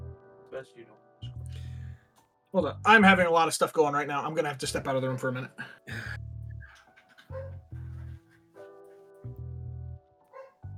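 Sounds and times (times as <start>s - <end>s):
speech: 0.6s - 1.1s, 2.5s - 6.1s
dog barking in loud bursts: 5.0s - 5.4s, 6.6s - 9.1s, 10.3s - 10.6s.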